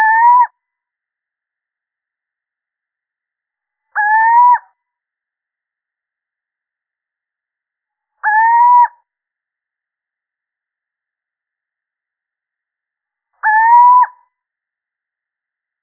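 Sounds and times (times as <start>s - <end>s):
male little owl hooting: 0.0s - 0.5s, 4.0s - 4.7s, 8.2s - 9.0s, 13.4s - 14.2s.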